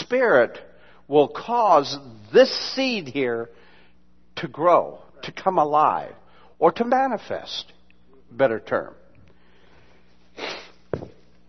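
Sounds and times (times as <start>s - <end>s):
speech: 0.1s - 3.6s, 4.4s - 7.7s, 8.3s - 9.0s
person sniffing: 10.3s - 11.0s
person blowing nose: 10.3s - 11.1s.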